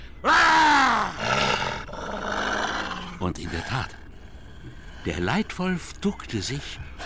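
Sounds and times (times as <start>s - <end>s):
person's loud harsh roaring scream to scare off wolves: 0.2s - 3.0s
speech: 3.2s - 4.0s, 4.6s - 7.0s.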